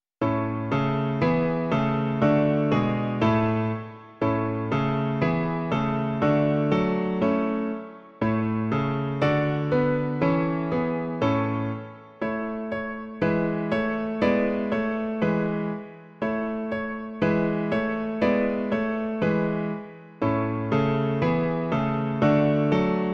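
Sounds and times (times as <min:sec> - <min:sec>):
piano version of a hymn: 0:00.2 - 0:23.1.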